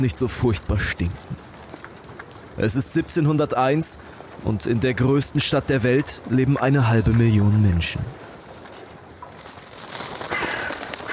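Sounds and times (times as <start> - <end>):
speech: 0.0 - 1.5, 2.6 - 8.2
ravens cawing: 10.1 - 11.1.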